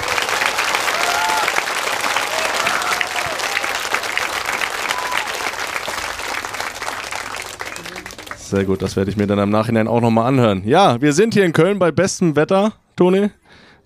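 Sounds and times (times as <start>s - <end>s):
faint cheers: 0.0s - 5.7s
live audience applause: 0.0s - 9.1s
speech: 8.5s - 13.4s.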